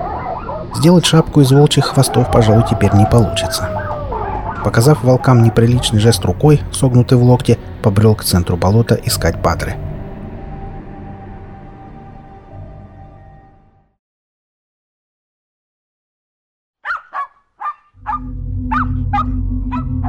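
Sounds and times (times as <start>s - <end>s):
dog barking joyfully: 0.0s - 6.4s, 16.8s - 20.0s
speech: 0.7s - 3.8s, 4.6s - 9.9s
low steady droning sound: 0.7s - 13.8s, 18.0s - 20.0s.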